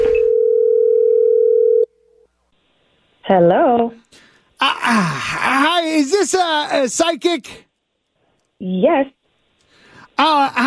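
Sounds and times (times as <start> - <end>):
telephone dial tone: 0.1 - 1.9
speech: 3.3 - 7.7, 8.6 - 9.2, 10.2 - 10.6.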